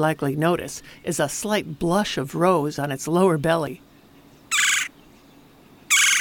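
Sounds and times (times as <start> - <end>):
speech: 0.0 - 3.9
red-bellied woodpecker churr calls: 4.2 - 6.1.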